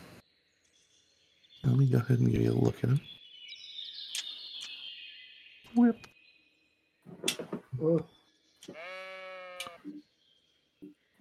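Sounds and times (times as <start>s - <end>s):
speech: 1.6s - 3.2s
sheep bleating in farming country: 8.7s - 9.9s.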